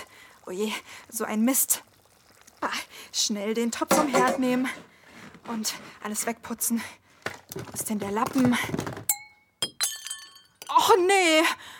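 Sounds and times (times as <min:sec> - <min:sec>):
speech: 0:00.5 - 0:01.9, 0:03.2 - 0:04.9, 0:05.5 - 0:07.0, 0:07.6 - 0:09.0, 0:10.9 - 0:11.7
drinking glass shattering on a hard floor: 0:09.1 - 0:10.7
glass shards tinkling: 0:09.1 - 0:10.7.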